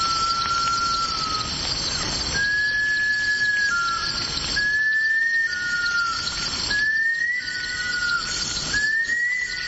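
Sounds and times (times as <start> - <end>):
bush stone-curlew call: 0.0 - 9.6
steady hiss: 0.0 - 9.6.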